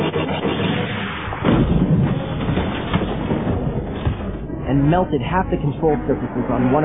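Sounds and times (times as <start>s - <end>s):
laser cannon blast from a speeder bike: 0.0s - 4.9s
loud rough rumble of speeder bike engine: 0.0s - 6.8s
speech: 4.9s - 6.8s.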